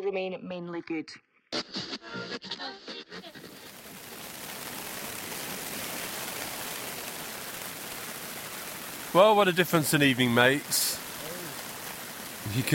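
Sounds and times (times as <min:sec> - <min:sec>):
speech: 0:00.1 - 0:03.8, 0:09.1 - 0:11.0, 0:12.5 - 0:12.7
heavy rain crashing down outdoors: 0:03.2 - 0:12.7.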